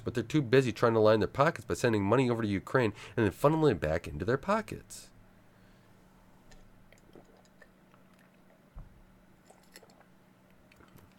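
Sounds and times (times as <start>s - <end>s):
low steady hum: 0.0s - 11.1s
speech: 0.1s - 5.1s
person drinking water: 6.9s - 8.6s, 9.4s - 10.1s.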